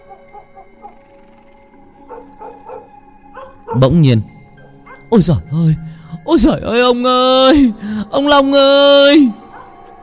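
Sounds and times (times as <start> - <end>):
steady tonal backdrop: 0.0 - 10.0
dog barking frantically on a porch: 2.1 - 3.9
speech: 3.8 - 4.3, 5.1 - 9.4.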